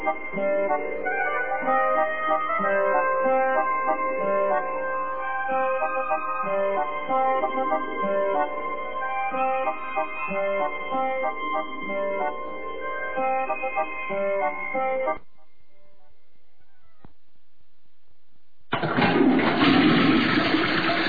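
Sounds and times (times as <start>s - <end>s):
short musical passage: 0.0s - 15.2s
toilet flushing: 18.7s - 21.0s.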